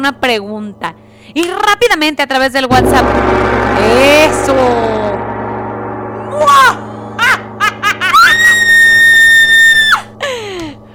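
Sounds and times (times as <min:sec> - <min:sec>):
speech: 0:00.0 - 0:05.3
woman screaming: 0:08.1 - 0:10.1.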